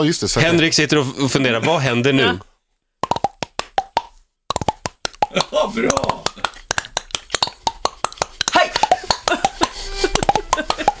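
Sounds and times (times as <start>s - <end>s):
speech: 0.0s - 2.5s, 5.3s - 6.2s
hollow mouth pops made by a man tapping his cheeks: 3.0s - 10.9s.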